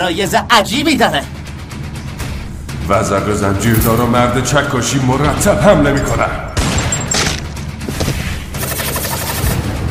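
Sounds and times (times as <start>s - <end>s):
speech: 0.0s - 1.4s, 2.9s - 6.5s
loud sustained volley of gunfire: 8.1s - 9.8s.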